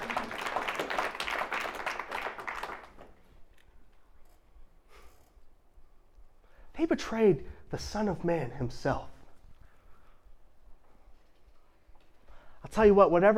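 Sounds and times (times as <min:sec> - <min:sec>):
audience clapping and applauding: 0:00.0 - 0:03.6
speech: 0:06.8 - 0:09.1, 0:12.7 - 0:13.3.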